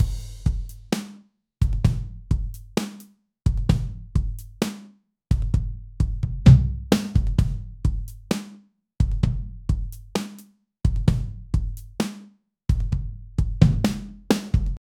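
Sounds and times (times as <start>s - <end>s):
calm clear drums: 0.0s - 14.8s.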